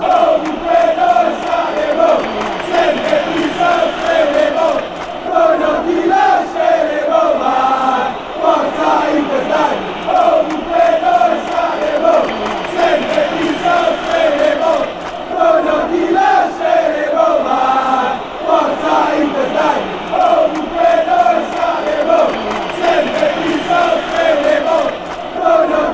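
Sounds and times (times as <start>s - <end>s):
fans chanting in Denmark: 0.0s - 25.9s.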